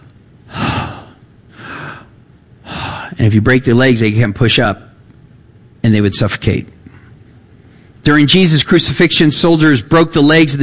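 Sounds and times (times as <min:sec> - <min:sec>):
person imitating gasps for breath of someone hanging on a cross: 0:00.5 - 0:02.1
speech: 0:03.1 - 0:04.9, 0:05.9 - 0:06.8, 0:08.0 - 0:10.6.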